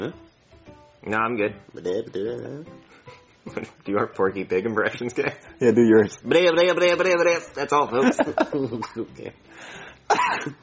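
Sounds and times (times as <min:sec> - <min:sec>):
speech: 0:00.0 - 0:00.3, 0:01.0 - 0:10.6
laughter: 0:08.0 - 0:09.2
person coughing loudly and roughly: 0:10.1 - 0:10.6.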